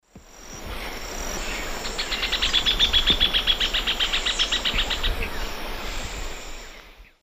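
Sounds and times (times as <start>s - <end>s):
Furnarius minor singing in South American eastern lowlands: 0.4s - 7.2s.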